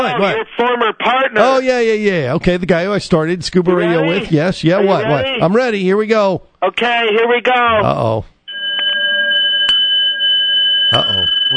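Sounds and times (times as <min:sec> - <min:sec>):
speech: 0:00.0 - 0:08.3, 0:10.9 - 0:11.5
bell ringing: 0:08.5 - 0:11.5.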